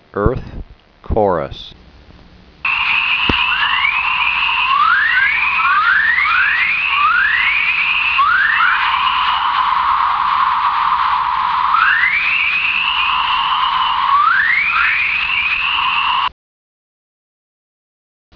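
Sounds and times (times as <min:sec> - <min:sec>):
geomagnetic chorus: 0:02.6 - 0:16.3.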